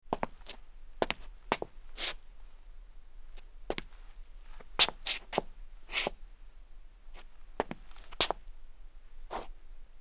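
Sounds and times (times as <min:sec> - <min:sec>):
footsteps scuffing on hard concrete: 0:00.1 - 0:02.2, 0:03.4 - 0:06.2, 0:07.2 - 0:08.4.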